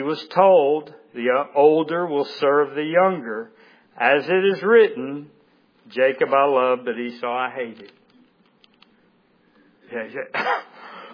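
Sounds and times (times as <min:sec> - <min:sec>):
speech: 0:00.0 - 0:08.0, 0:09.9 - 0:10.7
person with a cold coughing: 0:10.3 - 0:11.1
short rough throat-clearing: 0:10.3 - 0:11.1.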